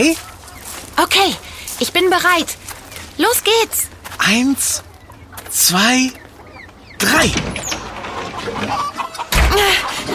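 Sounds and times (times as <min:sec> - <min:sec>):
speech: 0:00.0 - 0:00.3, 0:01.0 - 0:04.9, 0:05.5 - 0:06.2, 0:07.0 - 0:07.6, 0:09.5 - 0:10.1
startled chickens squawking and clucking: 0:00.0 - 0:03.9, 0:04.6 - 0:10.1
busy rustling background: 0:00.0 - 0:08.8
chicken enclosure door swung open with a loud thud: 0:09.3 - 0:09.6.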